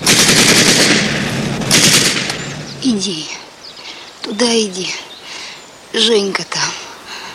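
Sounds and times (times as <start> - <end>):
rapid automatic gunfire at soldiers crossing a ford in a wartime film scene: 0.0 - 2.7
speech: 2.8 - 3.4, 4.3 - 5.1, 5.9 - 6.8.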